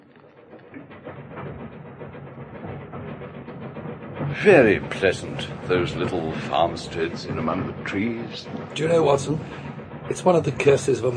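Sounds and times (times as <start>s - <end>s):
steam train rumbling along rails: 0.0s - 11.1s
speech: 4.4s - 11.1s.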